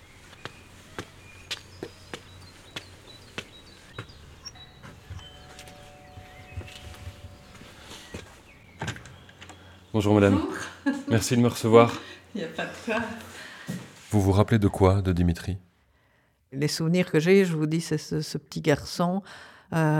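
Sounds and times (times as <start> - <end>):
footsteps climbing outdoor steps: 0.0 - 9.2
electric doorbell ringing at a front door: 4.4 - 9.3
speech: 10.0 - 13.3, 14.1 - 15.7, 16.5 - 19.9.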